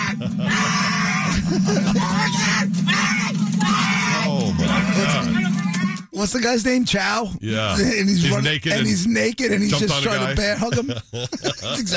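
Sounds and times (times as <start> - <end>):
laughter: 0.0 - 2.7, 4.2 - 5.9, 9.7 - 11.9
man screaming and yelling: 0.0 - 5.4
speech: 1.5 - 3.1, 6.2 - 11.9.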